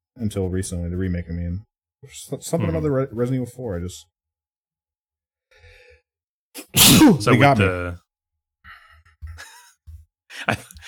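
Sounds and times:
speech: 0:00.2 - 0:04.1, 0:06.7 - 0:08.0, 0:10.4 - 0:10.8
person sneezing: 0:06.6 - 0:07.4.

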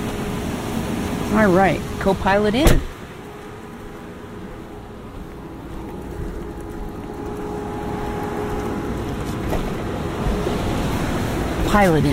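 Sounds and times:
car air conditioning blowing loudly: 0:00.0 - 0:12.1
speech: 0:01.3 - 0:02.9, 0:11.7 - 0:12.1.

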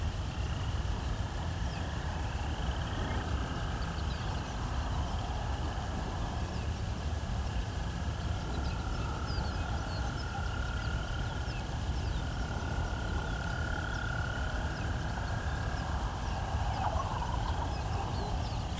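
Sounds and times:
droning insect or frog chorus: 0:00.4 - 0:18.7
wild turkey gobble call: 0:16.6 - 0:18.7.

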